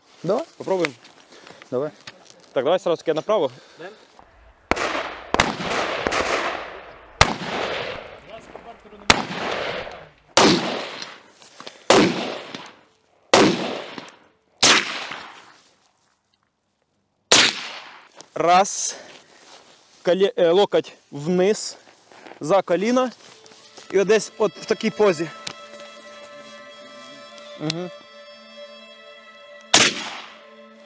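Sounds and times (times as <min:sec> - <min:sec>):
speech: 0:00.2 - 0:01.1, 0:01.7 - 0:02.0, 0:02.6 - 0:04.1, 0:18.4 - 0:19.0, 0:20.0 - 0:21.8, 0:22.4 - 0:23.2, 0:23.9 - 0:25.4, 0:27.6 - 0:28.0
gunshots during shooting practice: 0:04.6 - 0:08.2, 0:09.1 - 0:11.2, 0:11.9 - 0:15.4, 0:17.3 - 0:18.1, 0:29.8 - 0:30.4.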